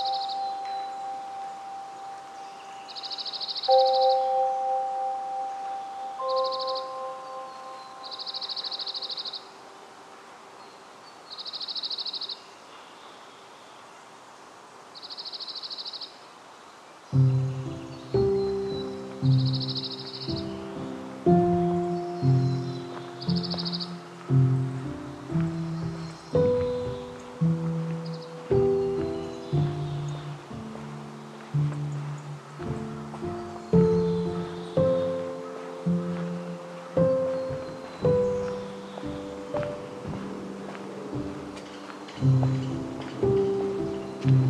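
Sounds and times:
bird calling in a forest: 0.0s - 9.9s, 17.1s - 44.4s
dense plucked ringing low notes: 17.2s - 44.4s.

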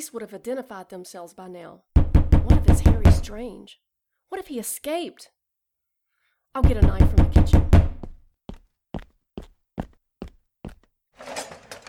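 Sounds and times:
speech: 0.0s - 5.4s, 6.6s - 7.7s
knocking on a door: 2.0s - 3.4s, 6.6s - 8.2s.

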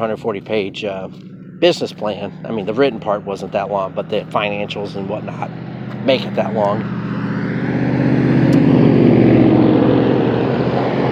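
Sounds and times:
speech: 0.0s - 7.0s
loud steady traffic noise with engine rumble and low drone: 0.0s - 11.1s.

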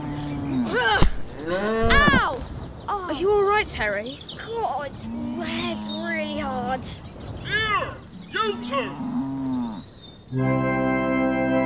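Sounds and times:
cow mooing: 0.0s - 2.2s, 8.2s - 9.9s
sharp thud: 1.0s - 2.2s
speech: 3.2s - 9.2s, 10.3s - 10.8s.

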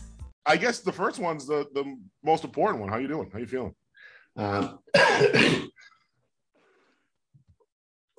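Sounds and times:
speech: 0.5s - 5.9s
person with a head cold coughing: 4.4s - 5.9s.

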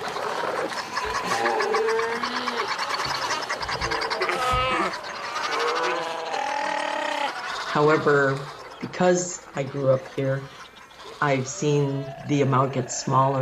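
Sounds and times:
fur seals bellowing and bleating on an island beach: 0.0s - 13.4s
speech: 7.8s - 10.6s, 11.2s - 13.4s.

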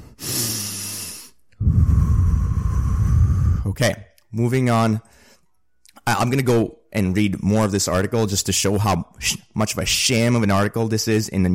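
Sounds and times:
person taking a deep breath: 0.0s - 3.7s, 5.1s - 5.5s
speech: 3.7s - 5.2s, 6.1s - 11.5s.

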